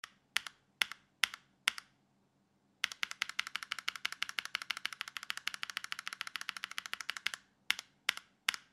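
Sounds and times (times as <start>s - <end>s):
Front Crystal mechanical keyboard keys: 2.8s - 8.6s.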